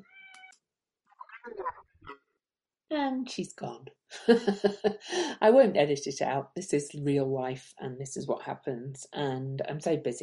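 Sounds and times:
cat meowing at home: 0:00.0 - 0:00.5
speech: 0:01.5 - 0:02.2, 0:02.9 - 0:10.2.

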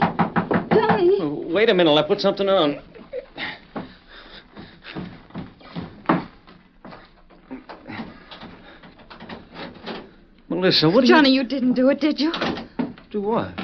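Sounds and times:
loud knocking on a bedroom door: 0:00.0 - 0:01.2, 0:04.6 - 0:06.4, 0:12.3 - 0:13.6
speech: 0:01.6 - 0:03.6, 0:10.6 - 0:13.6.

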